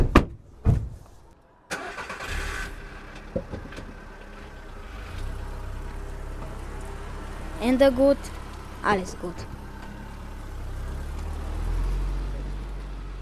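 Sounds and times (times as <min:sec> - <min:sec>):
sharp thuds: 0:00.0 - 0:01.1
car engine starting and running: 0:01.2 - 0:13.1
speech: 0:07.6 - 0:09.6.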